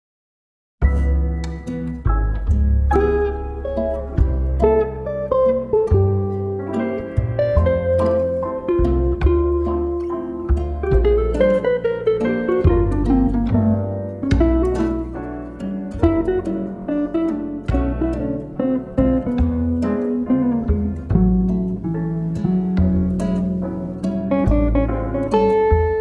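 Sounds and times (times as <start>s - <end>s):
jazz bossa music: 0.8s - 25.9s.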